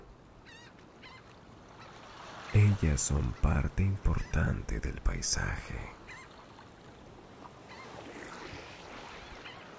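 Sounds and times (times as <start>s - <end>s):
steady wash of sea: 0.0s - 9.7s
seagulls giving short wavering cries: 0.4s - 2.0s, 6.0s - 6.4s, 7.6s - 8.1s, 9.0s - 9.7s
speech: 2.6s - 6.1s.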